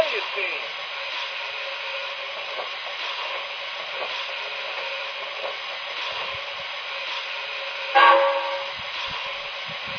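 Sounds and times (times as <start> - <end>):
passenger steam train hissing steam at station track: 0.0 - 9.9
passenger steam train whistle: 8.0 - 8.8.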